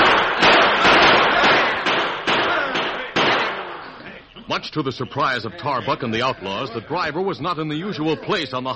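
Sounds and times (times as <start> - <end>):
volley of gunfire in a canyon: 0.0 - 3.9
speech: 4.6 - 8.7.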